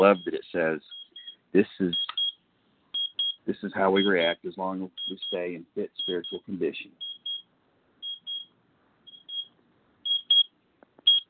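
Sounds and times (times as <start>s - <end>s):
speech: 0.0s - 2.1s, 3.5s - 7.1s
timer alarm beeping in shrill electronic tones: 0.0s - 2.4s, 3.0s - 3.4s, 4.0s - 7.4s, 8.0s - 8.5s, 9.1s - 10.5s, 11.1s - 11.2s.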